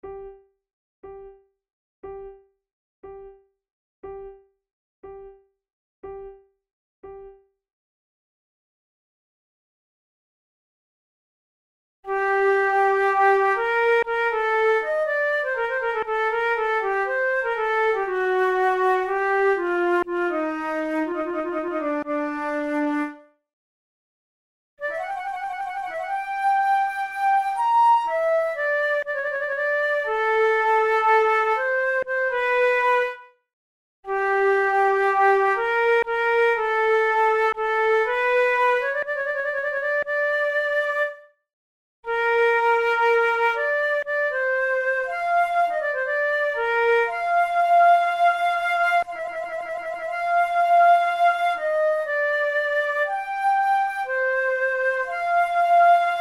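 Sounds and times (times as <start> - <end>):
two flutes playing a prelude: 12.1 - 23.2, 24.8 - 33.2, 34.1 - 41.2, 42.1 - 56.1.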